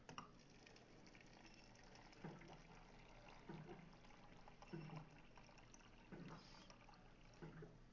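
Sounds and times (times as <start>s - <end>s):
water being poured for a drink: 0.1s - 7.8s.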